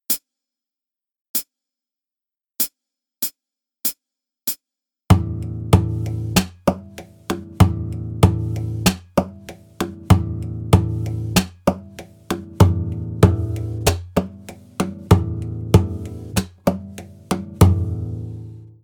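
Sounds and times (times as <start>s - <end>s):
rhythmic beat: 4.5s - 18.7s.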